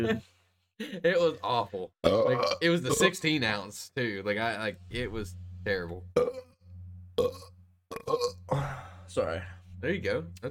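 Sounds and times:
speech: 0.0 - 6.4, 7.2 - 7.5, 8.1 - 10.4
bright belch-like grunt: 2.0 - 2.6, 7.2 - 8.9
low drawn-out burp: 2.0 - 3.0, 6.2 - 6.6, 7.2 - 9.0.

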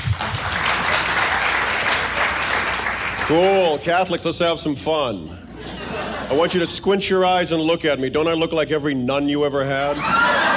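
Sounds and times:
audience applause: 0.0 - 3.8
speech: 3.3 - 10.3
laughter: 5.5 - 6.9, 9.9 - 10.5.

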